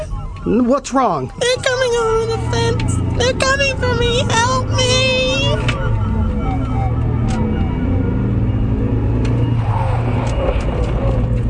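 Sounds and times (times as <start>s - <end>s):
car engine roaring during a U-turn and speeding: 0.0s - 11.4s
speech: 0.4s - 5.7s.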